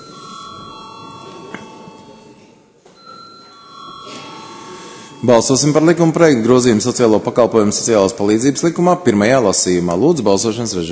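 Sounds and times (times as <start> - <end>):
parliament voting bell ringing before a vote on a bill: 0.0 - 7.0
speech: 5.2 - 10.9.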